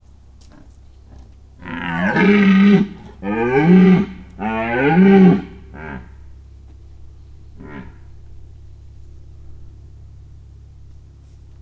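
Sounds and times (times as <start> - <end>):
quiet motor aircraft: 0.0 - 11.6
red deer in a zoo: 0.3 - 6.3, 7.3 - 8.4.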